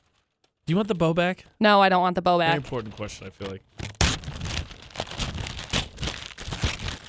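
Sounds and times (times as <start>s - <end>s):
speech: 0.7s - 3.8s
wrapping paper crinkling and tearing off a present: 3.0s - 7.0s.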